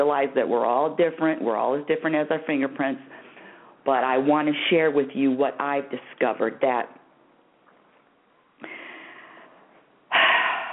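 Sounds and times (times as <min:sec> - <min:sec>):
speech: 0:00.0 - 0:03.2, 0:03.8 - 0:07.0
deep breath: 0:03.1 - 0:03.8, 0:08.6 - 0:10.7.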